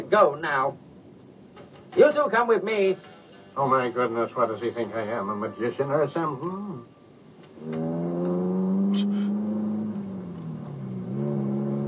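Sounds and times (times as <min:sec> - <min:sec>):
speech: 0:00.1 - 0:00.8, 0:01.9 - 0:06.9, 0:07.6 - 0:07.9
heavy tank engine starting up and droning while driving: 0:07.5 - 0:11.8.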